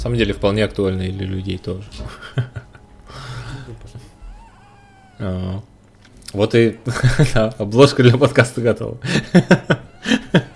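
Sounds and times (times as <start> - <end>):
speech: 0.0 - 2.6, 5.2 - 5.7, 6.3 - 10.5
cat meowing: 4.2 - 5.6, 9.7 - 10.5
laughter: 9.1 - 10.5.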